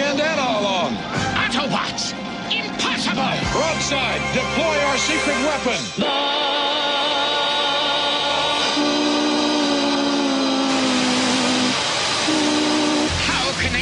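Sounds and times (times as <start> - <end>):
loud harsh white noise hiss: 0.0 - 13.8
steady droning tones: 2.0 - 13.8.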